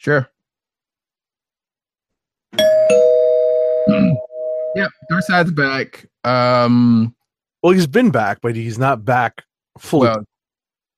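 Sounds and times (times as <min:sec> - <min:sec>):
speech: 0:00.0 - 0:00.3, 0:04.8 - 0:10.3
bell rung as spoiler warning: 0:02.6 - 0:05.4.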